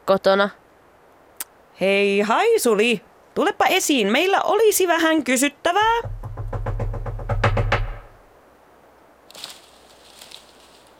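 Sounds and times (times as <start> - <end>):
speech: 0.1 - 0.6, 1.8 - 6.2
firm knocks on a door: 5.8 - 8.2.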